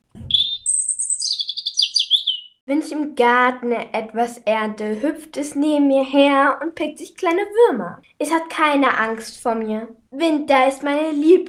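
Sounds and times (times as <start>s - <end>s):
European robin singing: 0.2s - 2.6s
speech: 2.7s - 11.4s.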